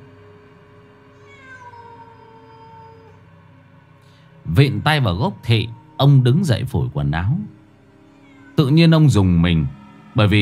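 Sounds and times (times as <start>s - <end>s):
feral cat yowling on a persimmon tree branch: 1.1s - 3.3s, 4.5s - 7.4s, 8.1s - 8.8s
speech: 4.5s - 7.6s, 8.6s - 10.4s.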